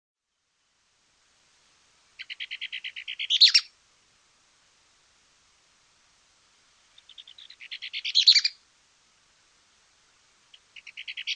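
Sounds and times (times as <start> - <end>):
Mouse-colored tyrannulet Phaeomyias murina murina song: 2.2 - 3.7, 7.0 - 8.6, 10.5 - 11.3.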